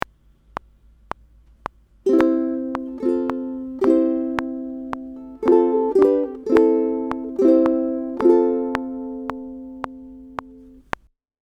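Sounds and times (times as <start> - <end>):
ukulele strum: 2.0 - 11.0.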